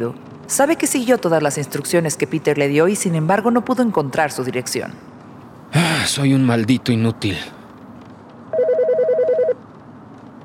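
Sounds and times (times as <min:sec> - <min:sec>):
speech: 0:00.0 - 0:05.1, 0:05.7 - 0:07.6
bedside telephone ringing in a London hotel room: 0:08.5 - 0:09.6.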